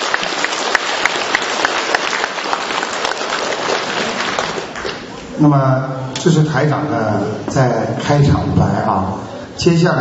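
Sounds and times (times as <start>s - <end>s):
audience applause: 0.0s - 5.2s
speech: 5.4s - 9.9s.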